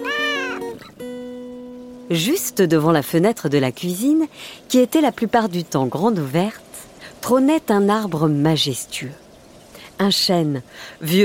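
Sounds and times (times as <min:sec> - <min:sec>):
cat meowing: 0:00.0 - 0:00.8
speech: 0:02.1 - 0:06.6, 0:07.2 - 0:09.2, 0:10.0 - 0:11.2.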